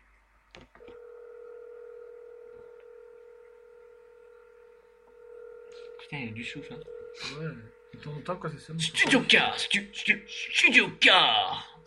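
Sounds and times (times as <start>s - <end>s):
telephone keypad tones dialing a call: 0.8s - 8.1s
steady held telephone line tone: 0.8s - 11.8s
speech: 6.1s - 11.8s.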